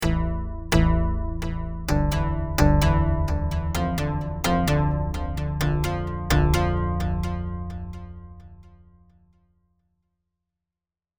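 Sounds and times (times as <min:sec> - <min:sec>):
synth riff with delay: 0:00.0 - 0:08.7.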